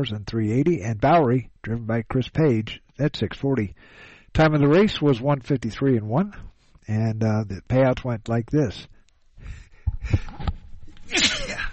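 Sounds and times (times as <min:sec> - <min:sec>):
speech: 0:00.0 - 0:10.5
short catching breaths before a sneeze: 0:03.8 - 0:04.3, 0:09.4 - 0:10.5
person sneezing: 0:11.1 - 0:11.7.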